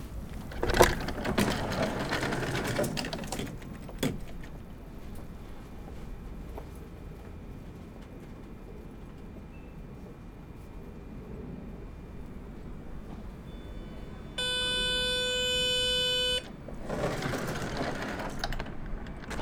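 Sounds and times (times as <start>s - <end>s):
Belgian train door closing: 0.0s - 5.6s, 12.0s - 19.4s.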